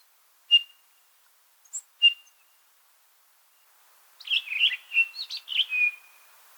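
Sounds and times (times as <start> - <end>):
Townsend's Solitaire whistled call notes in the Sierra Nevada, California: 0.5 - 0.8, 2.0 - 2.4, 4.2 - 6.2.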